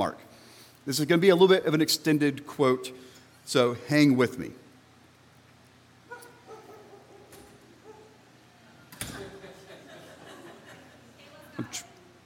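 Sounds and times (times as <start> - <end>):
speech: 0.0 - 4.6
low steady hum: 0.0 - 12.2
dog barking and yipping in a church: 6.1 - 8.2
laughter: 9.1 - 11.2.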